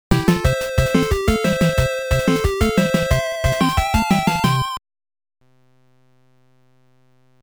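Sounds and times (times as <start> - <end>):
NES chiptune game music: 0.1 - 4.8.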